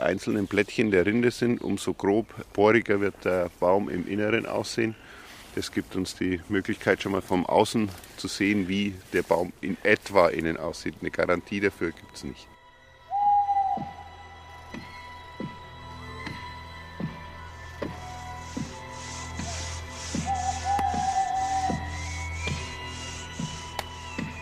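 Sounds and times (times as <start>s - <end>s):
speech: 0.1s - 12.5s, 13.8s - 14.0s
small owl hooting in treetops at night: 13.1s - 14.2s, 19.0s - 23.8s
rhythmic sawing: 17.4s - 24.4s.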